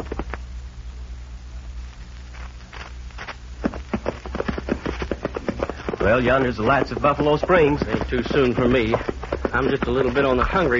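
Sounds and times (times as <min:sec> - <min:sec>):
low rumble: 0:00.0 - 0:10.7
horses' hooves clip-clopping while riding after dark: 0:02.8 - 0:10.7
speech: 0:06.0 - 0:10.7.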